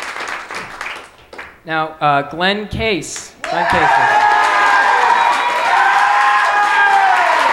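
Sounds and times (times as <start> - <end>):
large audience applause: 0.0 - 1.5, 3.4 - 7.5
speech: 1.6 - 4.3
large audience cheering and whooping: 3.4 - 7.5.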